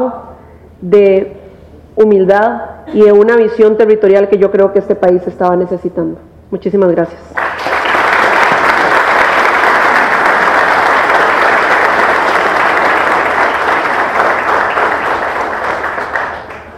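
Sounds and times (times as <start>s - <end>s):
speech: 0.0s - 1.4s, 2.0s - 7.4s
audience applause: 7.4s - 16.7s.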